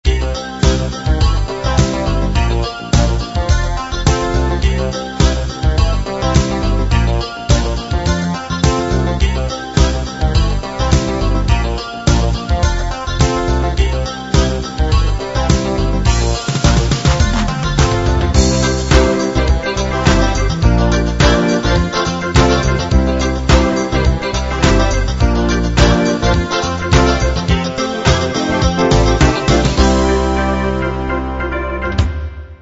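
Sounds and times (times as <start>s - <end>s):
clavinet funk playing: 0.0s - 32.3s.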